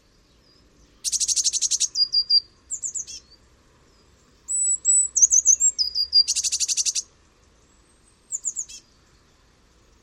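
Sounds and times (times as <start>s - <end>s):
Eurasian blue tit churring rattles: 1.0s - 3.3s, 4.5s - 7.1s, 8.3s - 8.9s.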